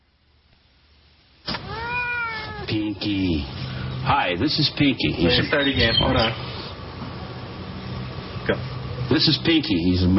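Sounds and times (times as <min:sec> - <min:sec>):
male domestic shorthair cat meowing: 0:01.5 - 0:02.8
speech: 0:02.7 - 0:06.5, 0:08.5 - 0:10.1.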